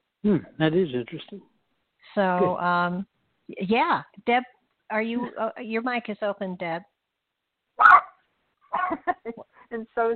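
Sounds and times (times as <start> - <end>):
speech: 0.2 - 6.9, 8.9 - 10.1
dog barking: 7.8 - 9.0.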